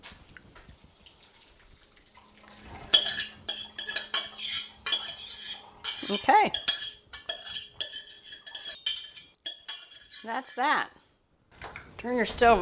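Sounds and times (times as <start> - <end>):
water from cooked farro gushing through a colander: 0.3 - 6.2
pot clattering against a metal colander: 2.8 - 10.8
speech: 6.1 - 6.7, 10.2 - 11.0, 12.0 - 12.6.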